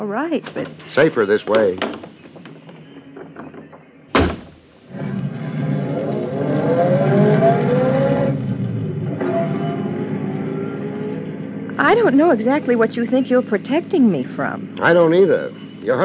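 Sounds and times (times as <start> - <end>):
speech: 0.0 - 2.0, 12.1 - 16.0
car door shutting: 4.1 - 5.0
car engine starting and revving on a street: 4.2 - 13.5.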